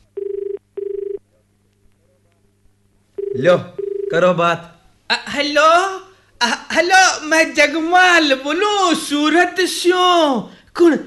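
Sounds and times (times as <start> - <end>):
faint hum: 0.0 - 11.0
telephone ringing as a call is placed: 0.2 - 1.2, 3.2 - 4.2
speech: 3.4 - 11.0.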